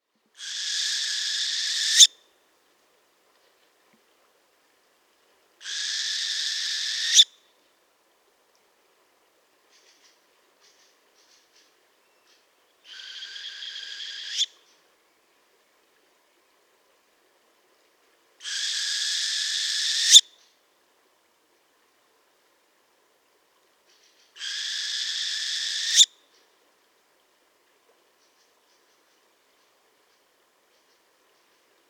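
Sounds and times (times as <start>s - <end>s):
northern hawk owl Surnia ulula calling: 0.4s - 2.1s, 5.6s - 7.3s, 12.9s - 14.5s, 18.4s - 20.2s, 24.4s - 26.1s.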